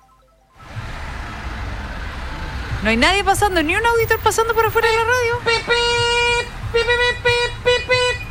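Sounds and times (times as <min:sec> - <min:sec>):
speech: 0:02.8 - 0:07.2
small tricycle horn honking: 0:04.4 - 0:08.2.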